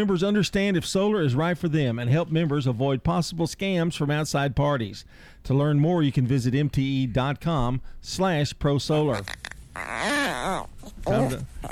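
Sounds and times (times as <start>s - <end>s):
speech: 0.0s - 11.7s
dog whimpering: 9.1s - 11.7s.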